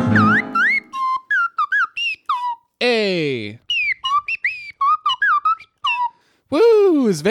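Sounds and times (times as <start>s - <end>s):
slide whistle playing a short wobbly tune: 0.1s - 2.7s, 3.6s - 6.4s
speech: 6.5s - 7.3s.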